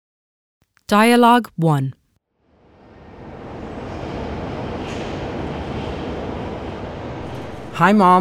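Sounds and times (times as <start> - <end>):
speech: 0.9 - 2.0, 7.8 - 8.1
broadband roar of train station ambience: 2.4 - 8.1
train rumble in a train station: 2.4 - 8.1.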